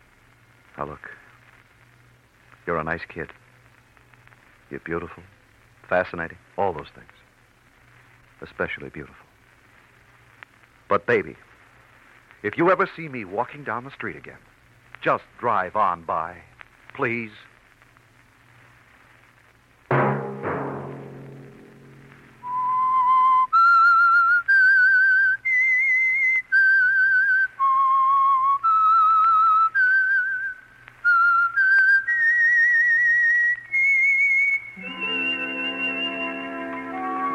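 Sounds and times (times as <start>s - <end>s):
speech: 0.8s - 1.2s, 2.7s - 3.4s, 4.7s - 7.2s, 8.4s - 9.2s, 10.9s - 11.5s, 12.4s - 17.5s
orchestral chord: 19.9s - 22.3s
lone clear whistled theme melody: 22.4s - 37.3s.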